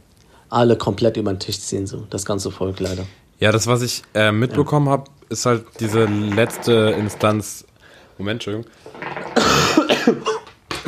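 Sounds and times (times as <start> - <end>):
speech: 0.5 - 10.4
person coughing: 9.4 - 10.8.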